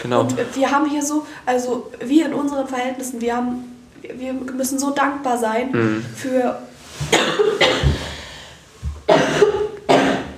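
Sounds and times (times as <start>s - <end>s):
speech: 0.0s - 7.9s
harsh coughs: 7.1s - 8.2s, 9.1s - 10.3s.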